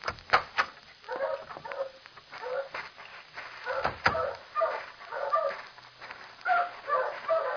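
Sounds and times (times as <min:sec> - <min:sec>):
dogs barking, yipping and whimpering in boarding kennels: 0:01.1 - 0:02.8, 0:03.6 - 0:05.6, 0:06.5 - 0:07.5.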